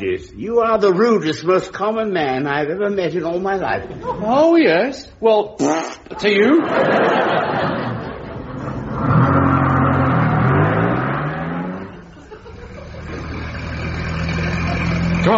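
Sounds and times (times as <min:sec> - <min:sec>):
speech: 0:00.0 - 0:07.5
laughter: 0:03.8 - 0:04.5, 0:06.0 - 0:09.0, 0:12.0 - 0:13.6
car engine running and revving as the vehicle is coaxed: 0:08.2 - 0:15.3.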